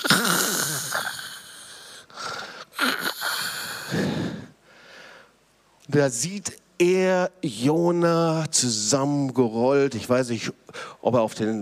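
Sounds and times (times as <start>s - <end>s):
person imitating loud snoring: 0.0s - 2.0s, 2.7s - 4.1s
speech: 6.0s - 11.6s.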